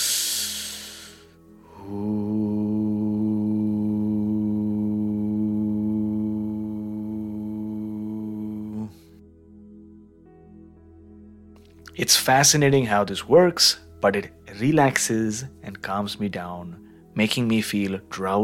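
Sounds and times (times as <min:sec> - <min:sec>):
person's short breathy inhale through the nose: 0:00.0 - 0:03.8
person's steady low hum on a nasal exhale: 0:00.0 - 0:10.6
speech: 0:12.0 - 0:18.4.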